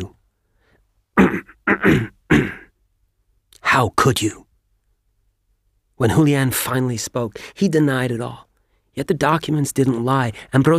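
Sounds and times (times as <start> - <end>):
man clearing his throat: 1.2 - 2.7
speech: 1.3 - 2.2, 3.8 - 4.4, 6.0 - 10.7.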